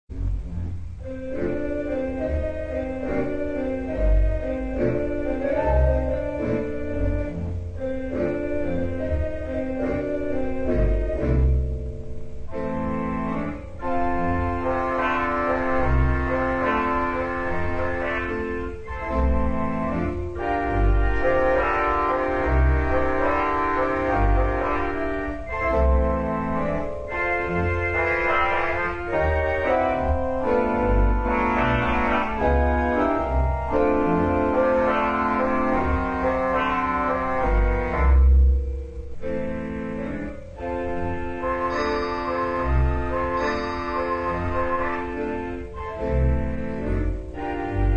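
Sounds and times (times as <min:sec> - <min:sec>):
theatre organ: 0:00.1 - 0:47.9.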